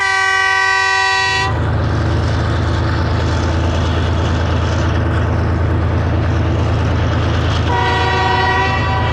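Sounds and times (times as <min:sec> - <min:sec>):
train whistle on the Yunnan-Vietnam railway in Yunnan China: 0:00.0 - 0:01.6, 0:07.7 - 0:09.1
passing train rumble and clatter on the Yunnan-Vietnam railway: 0:00.0 - 0:09.1.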